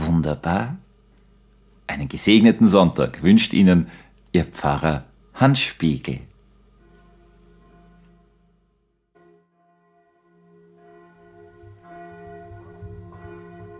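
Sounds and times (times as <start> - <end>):
speech: 0.2 - 0.8, 1.9 - 6.3
bells of a large old Roman Catholic church ringing on a Sunday morning to call worshippers: 6.8 - 13.7.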